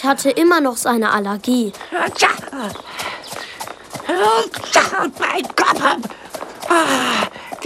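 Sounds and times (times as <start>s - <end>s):
speech: 0.0s - 3.2s, 4.1s - 7.6s
hooves of a brown-and-white pony being ridden clip-clopping at a walk: 0.0s - 7.6s.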